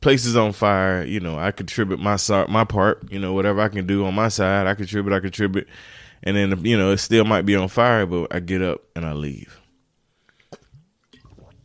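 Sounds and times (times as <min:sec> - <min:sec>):
speech: 0:00.0 - 0:09.6
person sipping water: 0:10.2 - 0:11.6.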